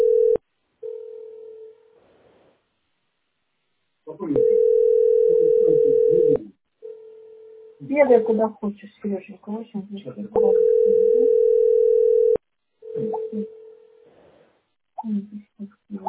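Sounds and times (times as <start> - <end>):
telephone ringing tone electronic beep: 0.0 - 1.8, 4.4 - 7.6, 10.4 - 13.0
speech: 7.9 - 11.5.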